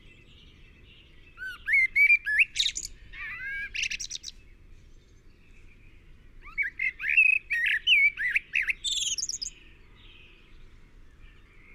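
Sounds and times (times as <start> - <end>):
Common blackbird Turdus merula song with fluty warbling whistled notes: 1.4 - 4.4, 6.4 - 9.6.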